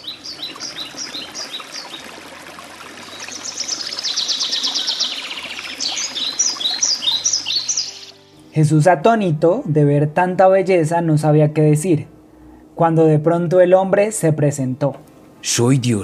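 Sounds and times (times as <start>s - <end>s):
trickling water: 0.0s - 8.2s
birds singing: 0.0s - 8.3s
speech: 8.6s - 12.1s, 12.8s - 16.0s.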